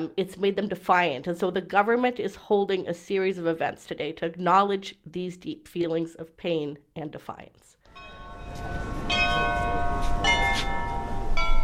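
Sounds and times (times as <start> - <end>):
speech: 0.0 - 8.9
large cathedral church bells ringing: 7.9 - 11.6.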